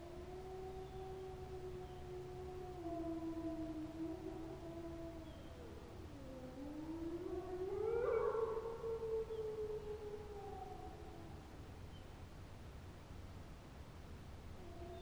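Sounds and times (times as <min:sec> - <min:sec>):
wild wolf pack howling in chorus in the forêt de Chabrières: 0:00.4 - 0:11.5.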